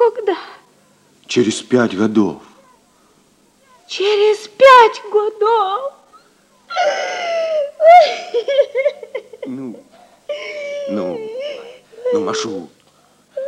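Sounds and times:
speech: 1.3 - 2.5, 3.9 - 6.0, 7.9 - 11.4, 12.1 - 12.8
woman crying and sobbing: 3.9 - 12.5.

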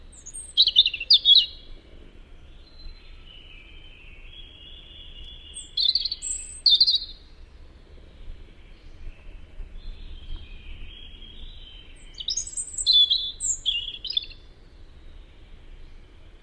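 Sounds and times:
European robin Erithacus rubecula singing: 0.0 - 1.7, 2.4 - 16.4.

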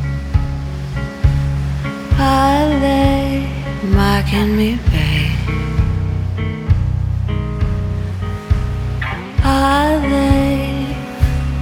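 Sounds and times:
ocean waves crashing: 0.0 - 11.5
speech: 3.8 - 5.4.

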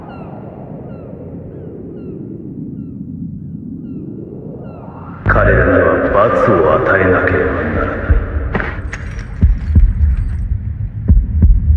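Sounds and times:
constant low hum: 0.0 - 11.7
speech: 5.4 - 7.8
heartbeat thuds in paired beats: 7.9 - 11.7.

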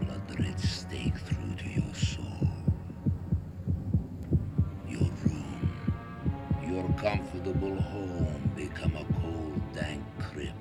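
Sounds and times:
heart thudding: 0.0 - 10.5
speech: 0.4 - 1.8.

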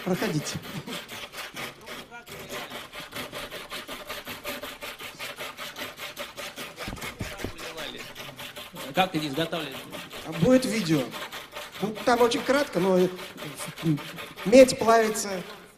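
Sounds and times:
speech: 0.0 - 1.0, 9.0 - 11.2, 11.8 - 15.6
hand sawing in steady back-and-forth strokes: 0.0 - 15.7
low knocks: 6.8 - 7.8.

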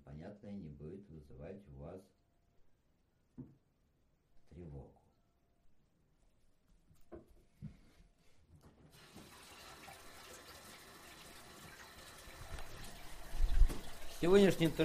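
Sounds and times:
speech: 0.2 - 2.2, 14.2 - 14.8
scattered water drips and trickles: 9.0 - 14.8.

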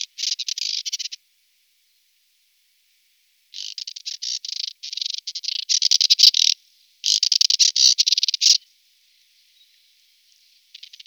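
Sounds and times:
Moussier's redstart song with fast chattering and scratchy runs: 0.0 - 1.2, 3.6 - 8.6, 10.7 - 11.0.

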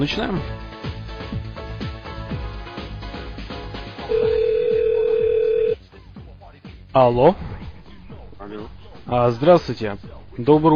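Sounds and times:
speech: 0.0 - 0.7, 6.9 - 7.5, 8.5 - 10.7
rhythmic music: 0.0 - 10.7
ringback tone on an outgoing telephone call: 4.1 - 5.8.

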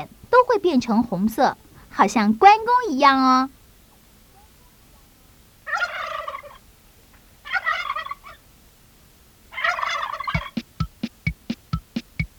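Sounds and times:
speech: 0.0 - 3.6
turkey gobbling: 5.7 - 6.7, 7.4 - 8.4, 9.5 - 12.1.

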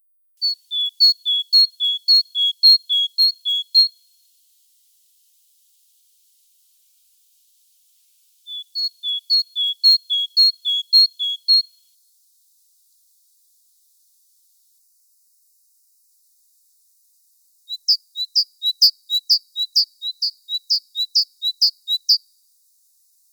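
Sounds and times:
great tit singing: 0.4 - 4.0, 8.4 - 11.8, 17.7 - 22.3.

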